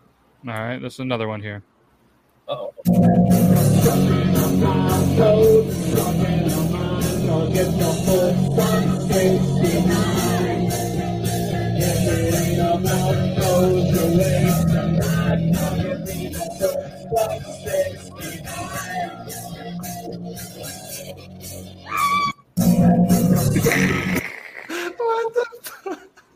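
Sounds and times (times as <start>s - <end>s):
speech: 0.4s - 1.7s, 2.5s - 6.4s
song with steady driving beat and dense layered instruments: 2.9s - 21.9s, 22.6s - 24.2s.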